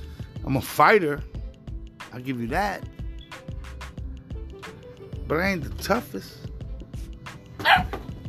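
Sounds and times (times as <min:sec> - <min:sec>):
speech: 0:00.5 - 0:01.3, 0:02.1 - 0:03.0, 0:05.3 - 0:06.5
puppy yapping: 0:07.6 - 0:08.0.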